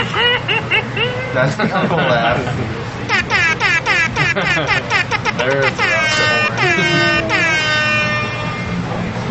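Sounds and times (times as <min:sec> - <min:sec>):
laughter: 0:00.0 - 0:08.2
speech: 0:01.4 - 0:03.0, 0:04.4 - 0:07.3
loud air horn blasts and bending honks: 0:03.1 - 0:08.9.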